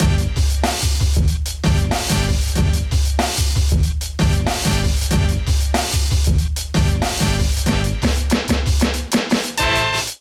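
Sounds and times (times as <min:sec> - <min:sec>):
complex melodic drum kit pattern: 0:00.0 - 0:10.1.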